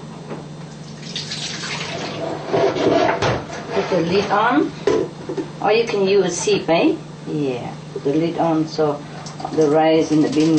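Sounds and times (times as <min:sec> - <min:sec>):
cloudy rinse water draining off washed rice: 0:00.7 - 0:02.6
speech: 0:03.9 - 0:10.5.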